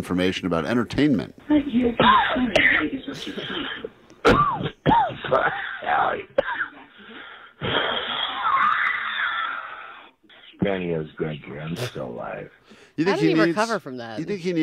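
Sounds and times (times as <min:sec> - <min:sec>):
speech: 0:00.0 - 0:06.4, 0:10.6 - 0:14.6
man coughing and wheezing over a phone line on a voicemail message: 0:02.0 - 0:08.6.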